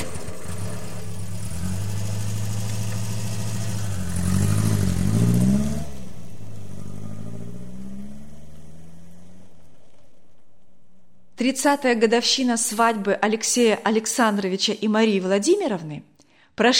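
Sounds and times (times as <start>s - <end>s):
car engine starting and revving: 0.0s - 11.4s
speech: 11.4s - 16.7s.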